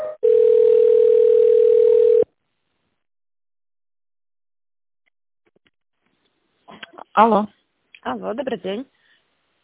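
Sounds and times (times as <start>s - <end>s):
electronic telephone tones while a call is transferred: 0.3s - 2.3s
speech: 7.2s - 8.9s.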